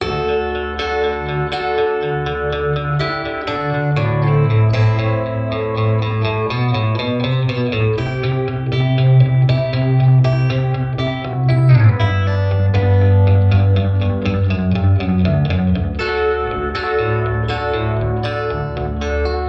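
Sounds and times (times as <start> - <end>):
195 Hz tone: 0.0 - 19.4.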